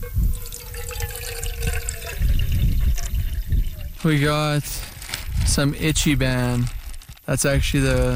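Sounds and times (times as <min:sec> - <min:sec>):
water pouring into a container: 0:00.3 - 0:04.2
speech: 0:04.0 - 0:04.9, 0:05.4 - 0:08.1.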